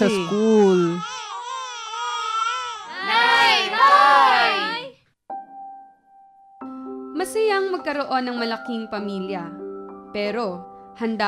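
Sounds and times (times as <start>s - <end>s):
speech: 0.0s - 1.1s, 7.5s - 11.2s
infant crying in strained wavering wails: 0.0s - 4.9s.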